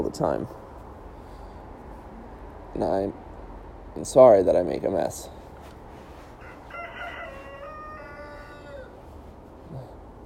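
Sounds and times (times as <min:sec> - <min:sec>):
speech: 0:00.0 - 0:00.6, 0:02.8 - 0:03.2, 0:04.0 - 0:05.4
rooster crowing: 0:06.4 - 0:09.2.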